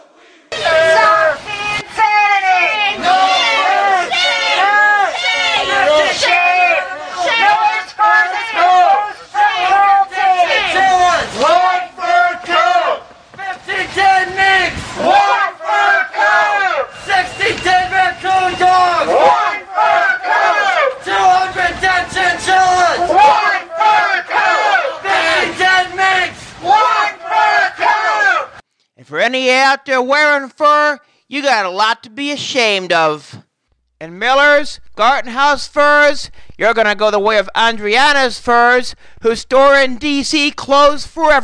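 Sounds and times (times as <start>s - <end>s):
crowd of anti-fur protesters screaming and chanting outdoors at a fur store: 0.0s - 28.6s
speech: 29.2s - 33.4s, 34.0s - 41.4s.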